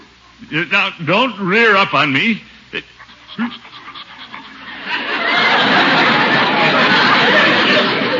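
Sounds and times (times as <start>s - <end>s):
speech: 0.5s - 3.6s
dog panting: 2.8s - 5.6s
laughter: 4.4s - 8.1s.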